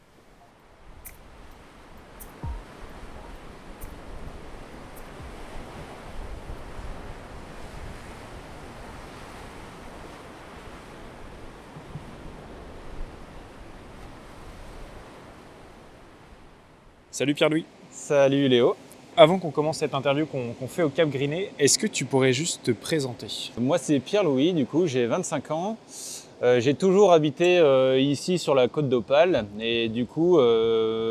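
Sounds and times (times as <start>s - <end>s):
sea waves breaking on a nearby shore: 0.8s - 16.8s
wind buffeting the microphone: 0.9s - 15.3s
speech: 17.2s - 31.0s.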